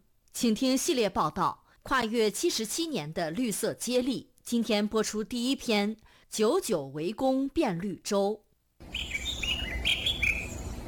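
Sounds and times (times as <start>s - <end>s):
speech: 0.4s - 9.1s
birds chirping among green shady trees in a reforested riverside area: 8.8s - 10.8s.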